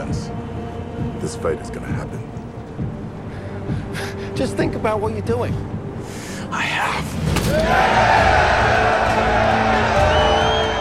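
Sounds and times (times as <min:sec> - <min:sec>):
speech: 0:01.3 - 0:02.9, 0:03.7 - 0:05.8, 0:06.5 - 0:09.5
dense crowd of prisoners cheering and shouting for a fight: 0:07.4 - 0:10.7.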